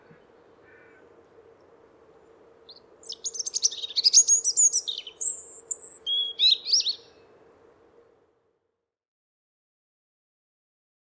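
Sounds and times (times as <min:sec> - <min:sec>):
European robin singing: 0:00.0 - 0:08.1
soft background hum: 0:00.0 - 0:08.6.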